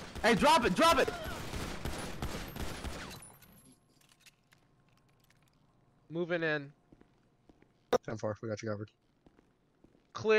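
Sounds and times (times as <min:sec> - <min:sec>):
gunfire in a police video game: 0:00.0 - 0:03.4
speech: 0:00.2 - 0:01.3, 0:06.1 - 0:06.8, 0:08.0 - 0:09.0, 0:10.2 - 0:10.3.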